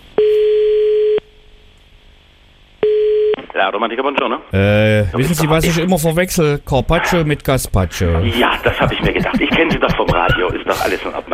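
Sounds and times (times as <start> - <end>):
steady single-pitched telephone tone before redialing: 0.2 - 1.3, 2.8 - 3.4
speech: 3.6 - 11.3
laughter: 8.0 - 11.3.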